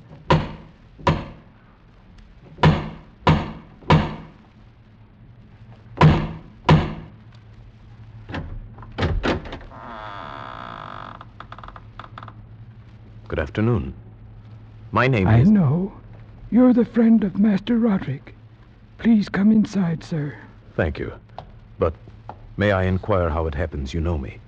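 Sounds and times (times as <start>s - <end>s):
heavy booming knocks on a massive wooden door: 2.6s - 4.3s, 6.0s - 7.1s
door creaking as it swings open: 8.3s - 12.5s
speech: 13.3s - 14.0s, 14.9s - 18.3s, 19.0s - 21.2s, 21.8s - 22.0s, 22.6s - 24.4s.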